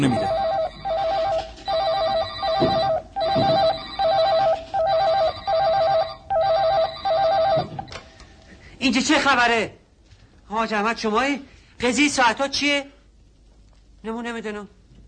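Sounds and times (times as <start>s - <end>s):
speech: 0.0s - 0.4s, 8.9s - 9.8s, 10.5s - 13.0s, 14.0s - 14.8s
several telephones ringing in an office: 0.0s - 8.2s.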